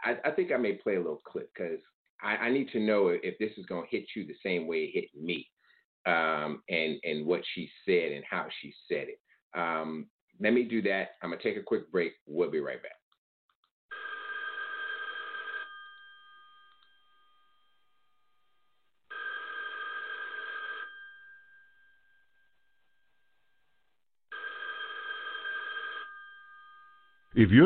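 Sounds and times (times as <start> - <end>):
speech: 0.0 - 13.0, 27.4 - 27.6
old-style telephone bell ringing: 13.9 - 27.3.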